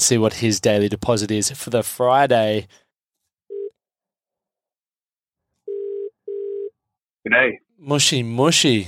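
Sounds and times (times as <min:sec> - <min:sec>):
speech: 0:00.0 - 0:02.8, 0:07.2 - 0:08.8
phone ringback tone purring through a handset: 0:03.5 - 0:03.7, 0:05.7 - 0:06.8.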